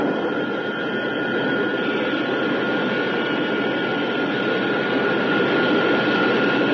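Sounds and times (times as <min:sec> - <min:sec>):
spacecraft retrojets firing to decelerate toward a landing platform: 0:00.0 - 0:01.6
faint sustained whine: 0:00.0 - 0:06.7.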